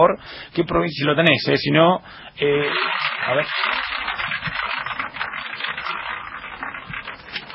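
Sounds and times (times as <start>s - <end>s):
speech: 0.0s - 4.6s
lottery balls clattering in a spinning lottery ball drum: 2.5s - 7.5s.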